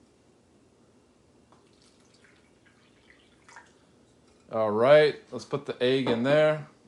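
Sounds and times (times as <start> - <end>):
room-temperature water pouring into a pink cup: 1.6 - 3.9
speech: 4.5 - 6.7.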